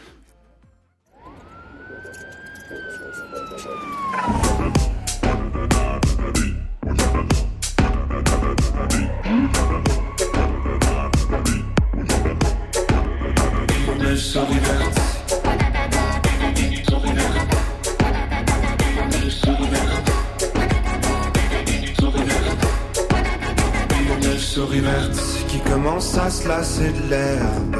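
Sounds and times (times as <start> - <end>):
siren-like wail: 1.1 - 5.6, 8.9 - 11.8
loud energetic dark-sounding song: 3.3 - 27.7
speech: 26.4 - 27.7.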